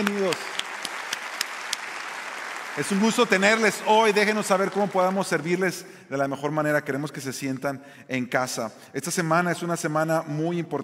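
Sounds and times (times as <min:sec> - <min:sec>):
church audience applauding at a service: 0:00.0 - 0:05.6
speech: 0:02.8 - 0:10.8.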